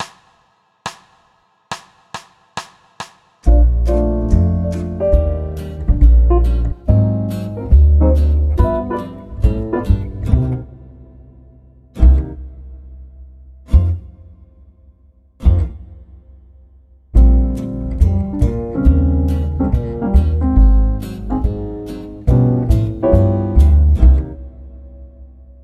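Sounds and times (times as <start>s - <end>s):
swing jazz drum set trading fours: 3.4s - 10.6s, 17.2s - 24.4s.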